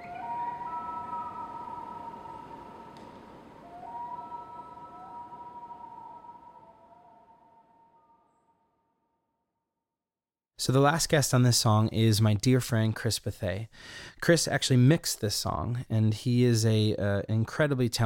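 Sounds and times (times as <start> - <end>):
loon calling in northern Minnesota: 0.0 - 7.4
speech: 10.6 - 18.0.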